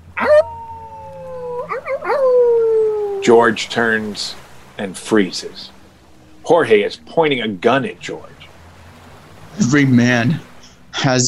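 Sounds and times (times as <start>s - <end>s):
man howling at the moon: 0.0s - 4.1s
speech: 3.2s - 5.8s, 6.5s - 8.4s, 9.6s - 11.2s.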